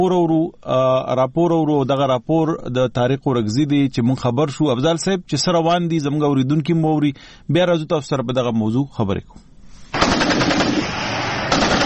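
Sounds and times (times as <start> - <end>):
speech: 0.0 - 10.6
heavy weapons gunfire in border fighting with the Taliban in Kurram: 10.0 - 11.8.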